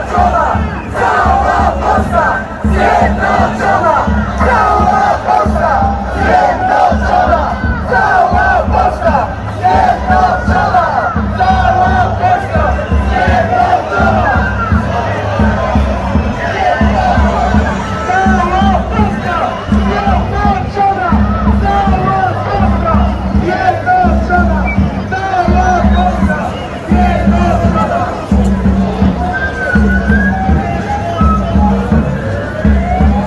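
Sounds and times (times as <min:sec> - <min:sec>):
large street protest crowd chanting and shouting in Katowice Poland: 0:00.0 - 0:33.2
siren: 0:29.3 - 0:33.2.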